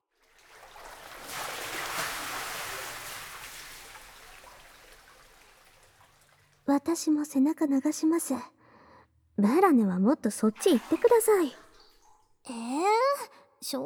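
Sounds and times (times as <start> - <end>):
water sloshing in a bubble bath tub: 0.0 - 7.4, 10.2 - 13.4
speech: 6.7 - 8.6, 9.4 - 11.6, 13.6 - 13.8.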